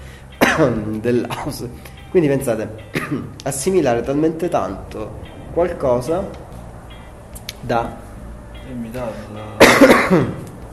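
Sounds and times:
speech: 0:00.6 - 0:06.4, 0:07.6 - 0:08.0, 0:08.7 - 0:10.4
person coughing: 0:02.9 - 0:03.3, 0:09.6 - 0:10.4.

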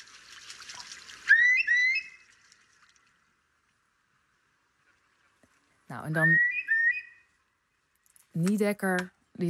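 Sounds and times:
hiss: 0:00.0 - 0:09.4
curlew calling in a garden: 0:01.2 - 0:02.4, 0:06.1 - 0:07.4
speech: 0:05.9 - 0:06.5, 0:08.4 - 0:09.4.

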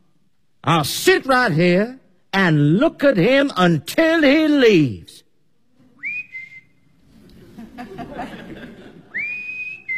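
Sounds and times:
speech: 0:00.7 - 0:05.2
person whistling outside: 0:06.0 - 0:07.0, 0:09.1 - 0:09.9
laughter: 0:07.1 - 0:09.6.

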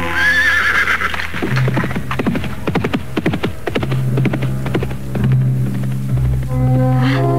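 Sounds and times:
ridden horse neighing: 0:00.1 - 0:01.2
ridden horse hooves clattering: 0:00.2 - 0:07.3.

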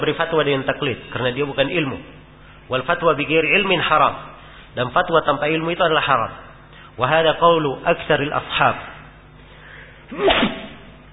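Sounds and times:
speech: 0:00.0 - 0:08.9, 0:10.1 - 0:10.6
person sneezing during an Islamic jurisprudence lesson: 0:10.1 - 0:11.0.

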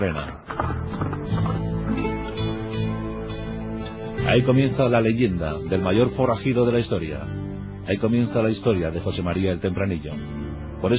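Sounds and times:
speech: 0:00.0 - 0:00.4, 0:04.4 - 0:10.9
hoofbeats of a horse galloping away into the hills: 0:00.3 - 0:02.5.

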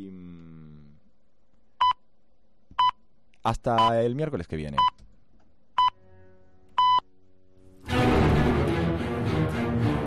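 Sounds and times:
speech: 0:03.4 - 0:05.0
music: 0:06.0 - 0:10.0
hourly time-signal pips marking eight o'clock: 0:06.8 - 0:07.0.

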